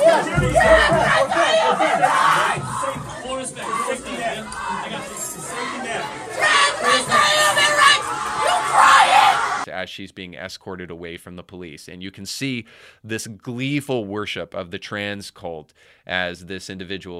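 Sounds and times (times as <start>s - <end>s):
crowd of protesters chanting: 0.0s - 9.7s
speech: 9.9s - 17.1s.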